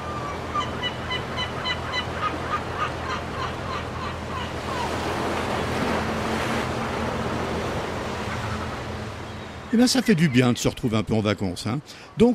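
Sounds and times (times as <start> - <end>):
seagulls crying: 0.0 - 6.3, 7.6 - 10.9
ocean surf: 0.0 - 12.3
speech: 9.8 - 12.3.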